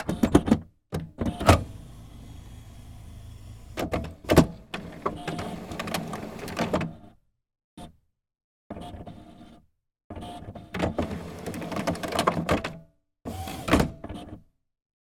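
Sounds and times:
HP Photosmart C3180 office printer start-up sequence: 0.1 - 7.0, 10.8 - 12.8, 13.3 - 14.3.

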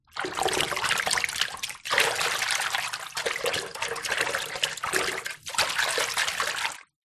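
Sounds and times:
shallow water moving in a bathroom basin: 0.0 - 6.9.

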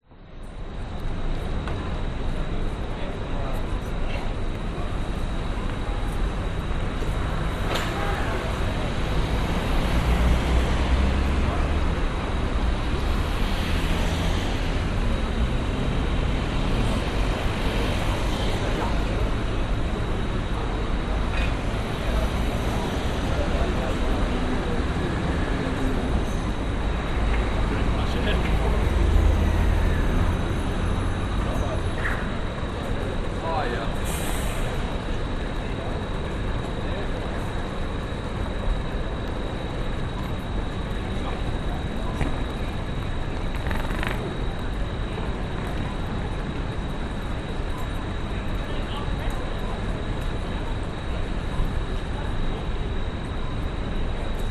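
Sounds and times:
pedestrians at a city street junction at night: 0.0 - 54.4
traffic at a city street junction at night: 0.0 - 54.4.

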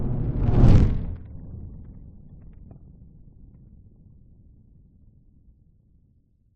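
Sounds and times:
large designed fireball passing by: 0.2 - 1.3.

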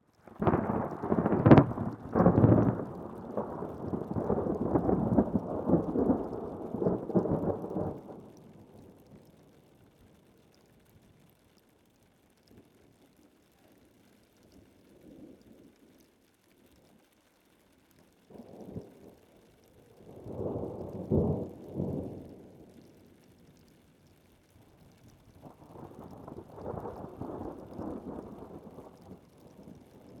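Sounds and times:
thunderstorm on top of Chacaltaya mountain at 5300m in Bolivia: 0.3 - 9.2, 19.9 - 23.0, 25.3 - 30.1.

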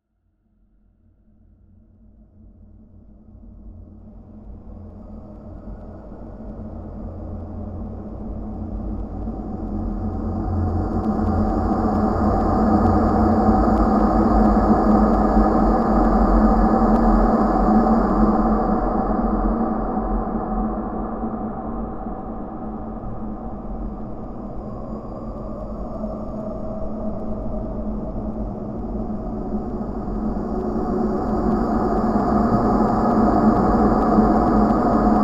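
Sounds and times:
eerie dark supernatural drone: 2.9 - 35.2.

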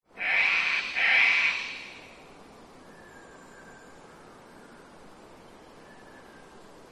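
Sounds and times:
quiet background hiss: 0.1 - 6.8
cockatoos screeching in rainforest in early spring in Queensland Australia: 0.2 - 2.0.

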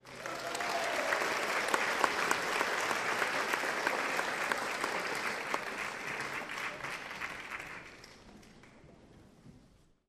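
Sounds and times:
theatre audience cheering: 0.0 - 7.6
theatre audience applauding: 0.0 - 8.9.

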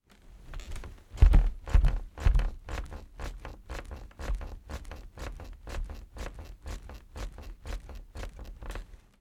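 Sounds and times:
person jumping and bouncing on top bunk of wooden household bunk bed: 0.5 - 5.0.

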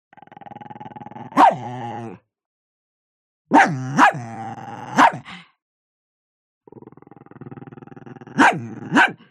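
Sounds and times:
Chihuahua growling: 0.1 - 2.2, 3.6 - 5.2, 6.7 - 9.2
Chihuahua barking: 1.4 - 1.7, 3.5 - 4.3, 4.9 - 5.3, 8.4 - 9.3.

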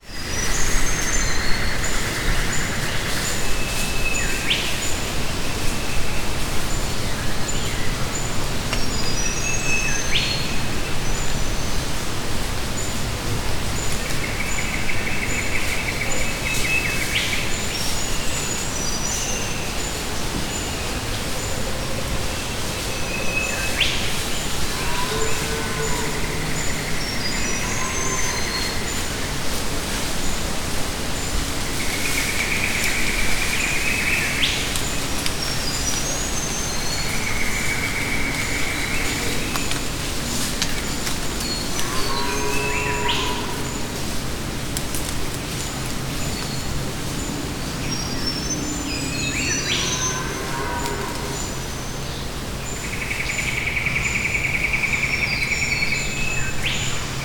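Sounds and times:
wind in rainforest trees: 0.0 - 57.2
birds in subtropical Australian rainforest: 0.2 - 57.2.

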